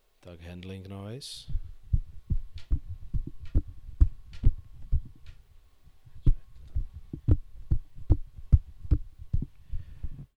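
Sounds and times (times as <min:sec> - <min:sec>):
voice into a Sennheiser e945 microphone: 0:00.2 - 0:01.5
handling noise on a Sennheiser e945 microphone: 0:01.4 - 0:05.4, 0:06.1 - 0:10.3.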